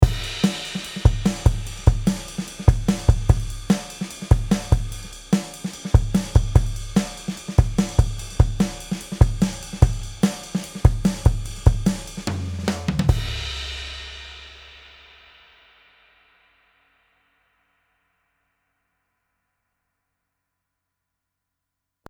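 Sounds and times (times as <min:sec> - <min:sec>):
drum bus peaking at 1 dB: 0:00.0 - 0:17.3.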